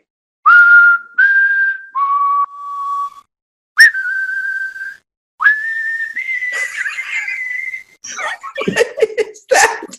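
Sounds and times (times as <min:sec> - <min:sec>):
person whistling a melodic spaghetti western film theme: 0:00.5 - 0:06.7
person laughing: 0:06.5 - 0:09.9.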